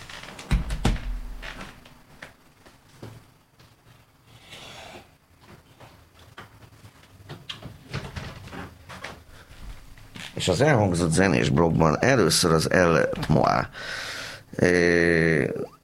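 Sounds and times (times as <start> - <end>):
door pushed shut with a solid thud: 0.4 - 1.8
speech: 10.4 - 15.7.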